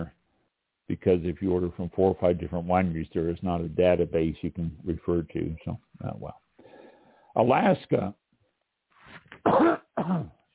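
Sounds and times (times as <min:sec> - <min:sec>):
speech: 0:00.9 - 0:06.4, 0:07.4 - 0:08.2, 0:09.4 - 0:10.4
person coughing harshly: 0:09.4 - 0:10.4.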